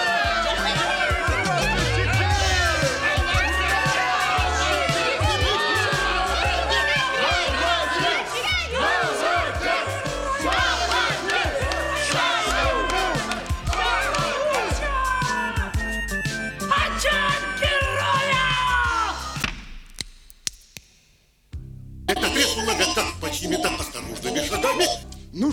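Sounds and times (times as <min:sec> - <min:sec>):
group of cartoon animal characters cheering hurrah: 0:00.0 - 0:19.4
laughter from cartoon animal characters: 0:22.1 - 0:25.0.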